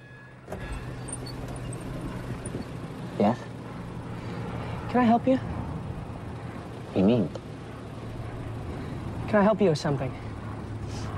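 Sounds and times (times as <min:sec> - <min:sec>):
steady rumble of outside traffic: 0:00.0 - 0:11.1
car window winding down with a soft mechanical shift: 0:00.4 - 0:02.8
speech: 0:03.2 - 0:03.5, 0:04.9 - 0:05.5, 0:07.0 - 0:07.4, 0:09.3 - 0:10.3.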